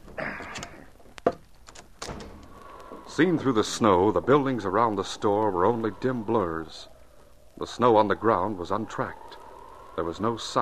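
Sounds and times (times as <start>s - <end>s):
front door scraping and rattling as it is unbarred: 1.3s - 3.8s
front door clunk: 2.0s - 2.5s
speech: 3.2s - 6.9s, 7.6s - 9.3s, 10.0s - 10.6s.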